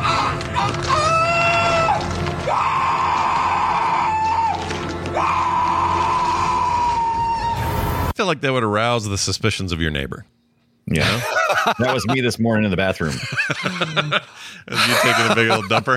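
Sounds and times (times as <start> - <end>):
man screaming in a film clip: 0.1 - 7.7
speech: 8.2 - 15.9
laughter: 11.0 - 12.4, 13.0 - 15.9.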